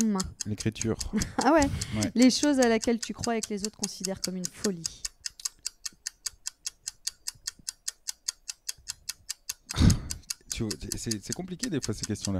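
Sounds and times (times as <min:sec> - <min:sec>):
timer ticking: 0:00.0 - 0:12.3
speech: 0:00.1 - 0:05.1, 0:10.6 - 0:12.3.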